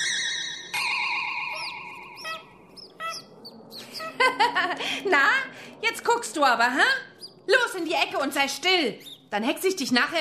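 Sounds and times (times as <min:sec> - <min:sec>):
cockatoo squeaking like a mouse: 0:01.5 - 0:04.2
speech: 0:04.6 - 0:10.2.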